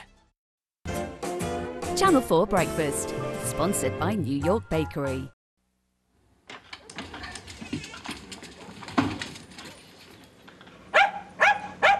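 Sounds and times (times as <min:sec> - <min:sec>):
speech: 0:02.0 - 0:05.4
dog barking: 0:10.9 - 0:11.9.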